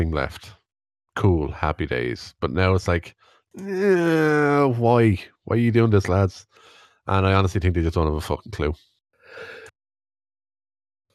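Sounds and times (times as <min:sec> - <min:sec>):
speech: 0:00.0 - 0:00.6, 0:01.2 - 0:09.6
short breathy voiced yawn: 0:03.6 - 0:04.8.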